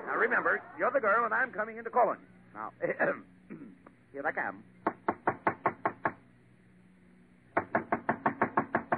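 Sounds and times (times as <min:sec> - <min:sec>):
speech: 0:00.2 - 0:03.3, 0:04.1 - 0:04.7
knocking on a door: 0:04.8 - 0:06.2, 0:07.5 - 0:08.9.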